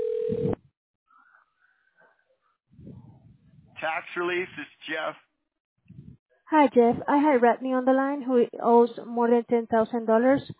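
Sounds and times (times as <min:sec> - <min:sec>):
telephone dialing tone: 0:00.0 - 0:00.6
speech: 0:03.8 - 0:05.3, 0:06.5 - 0:10.5.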